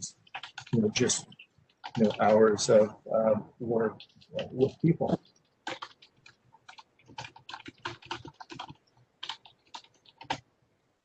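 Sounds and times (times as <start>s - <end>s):
typing notes on a computer keyboard: 0.2s - 2.6s, 4.0s - 10.5s
speech: 0.8s - 1.4s, 2.0s - 5.3s.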